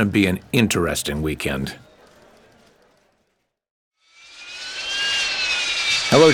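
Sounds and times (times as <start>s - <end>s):
speech: 0.0s - 1.8s, 6.1s - 6.3s
jet engine spooling up with a high whine: 4.2s - 6.3s.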